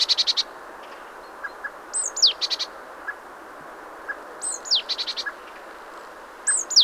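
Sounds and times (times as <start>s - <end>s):
constant hiss: 0.0s - 6.8s
great tit Parus major calling with downslurred notes and clicking chatter: 1.9s - 3.2s, 4.4s - 5.4s, 6.5s - 6.8s.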